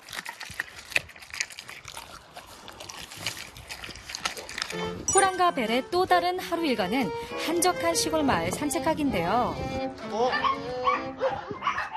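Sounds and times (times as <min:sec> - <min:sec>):
dog slurps: 0:00.0 - 0:05.1
small cracking sounds: 0:00.0 - 0:05.1
dog chewing and crunching raw chicken: 0:00.0 - 0:06.2
speech: 0:05.2 - 0:11.7.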